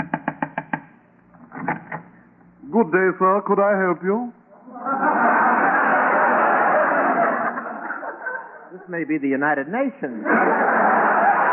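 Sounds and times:
quick raps on a door: 0.0s - 0.9s
speech: 2.8s - 5.1s, 8.8s - 10.8s
laughter: 4.6s - 8.9s, 10.2s - 11.5s.

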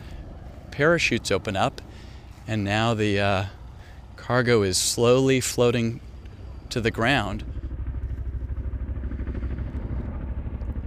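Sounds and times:
twin-rotor Chinook helicopter rotors beating overhead above airfield: 0.0s - 10.8s
speech: 0.8s - 3.6s, 4.2s - 6.1s, 6.7s - 7.5s.

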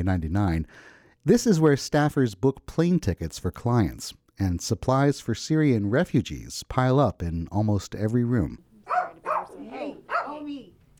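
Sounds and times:
speech: 0.0s - 10.7s
small dog yapping in an office: 8.8s - 10.4s.

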